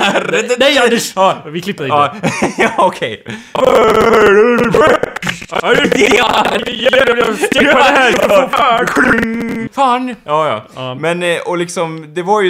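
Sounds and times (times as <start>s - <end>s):
laughter: 0.0s - 0.8s, 2.0s - 3.0s, 4.6s - 9.7s
speech: 0.3s - 12.4s
voice imitating a distorted robotic microphone sound: 3.6s - 9.8s.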